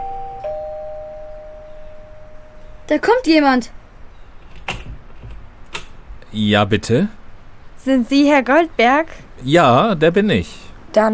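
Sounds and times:
two-note doorbell ding-dong chime at a house door: 0.0 - 2.6
speech: 2.9 - 3.8, 6.3 - 7.2, 7.8 - 11.1.

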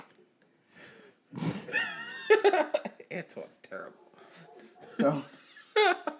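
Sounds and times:
breathy stretch: 0.6 - 1.2
laughter: 1.6 - 3.0, 4.7 - 6.1
speech: 2.4 - 4.1, 5.0 - 5.9
dogs barking: 4.0 - 5.4.

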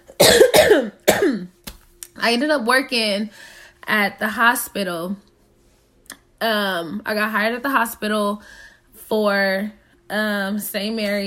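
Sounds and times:
harsh raspy cough: 0.1 - 1.5
speech: 2.2 - 5.3, 6.4 - 11.2.

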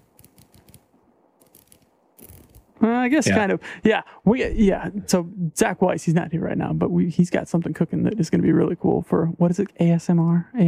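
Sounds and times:
watch bezel rotating with ratcheting clicks: 0.0 - 2.7
speech: 2.8 - 10.6.

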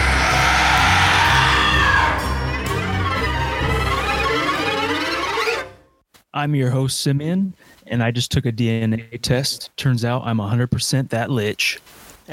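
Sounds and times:
dense wall of screaming and shrieking voices: 0.0 - 5.6
speech: 6.4 - 12.3.

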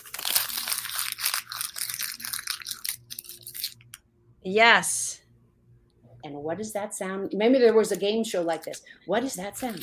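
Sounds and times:
paper receipt being crumpled by hand: 0.0 - 3.8, 9.6 - 9.8
speech: 4.4 - 5.0, 6.4 - 9.8.

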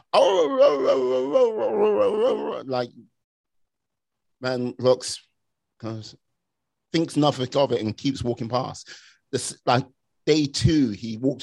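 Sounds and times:
person imitating a dog moaning: 0.0 - 2.9
speech: 0.1 - 3.1, 4.4 - 6.2, 6.9 - 11.4.

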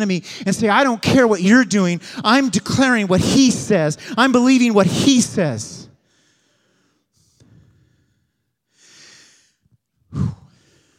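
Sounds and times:
speech: 0.0 - 5.8
preacher breathing heavily to catch his breath: 6.0 - 10.9.

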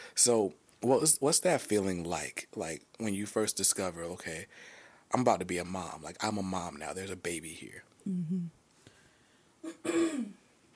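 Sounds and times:
speech: 0.2 - 8.6, 9.6 - 10.4
vocal hum: 8.1 - 8.5
person clearing throat: 9.6 - 10.4.

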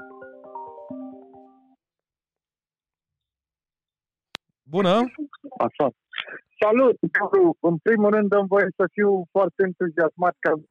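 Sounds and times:
incoming phone call ringtone of bright electronic notes: 0.0 - 1.7
speech: 4.7 - 10.7.

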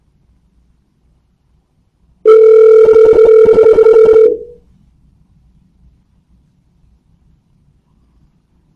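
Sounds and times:
ringback tone from an outgoing phone call: 2.2 - 4.6.

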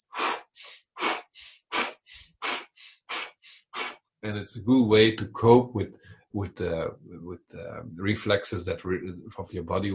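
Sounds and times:
forceful breathing in through the nose and out through the mouth: 0.0 - 4.0
speech: 4.2 - 9.9.

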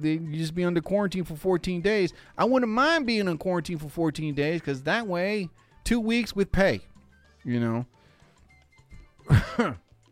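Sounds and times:
speech: 0.0 - 8.0, 9.3 - 9.8
person coughing: 9.2 - 9.8.

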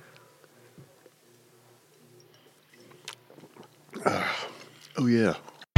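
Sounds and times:
people sipping wine: 2.3 - 5.6
speech: 5.0 - 5.5.

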